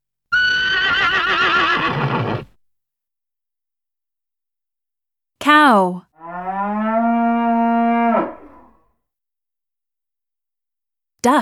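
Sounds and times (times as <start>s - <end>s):
horse neighing: 0.3s - 2.5s, 7.5s - 8.8s
speech: 5.5s - 6.1s, 11.2s - 11.4s.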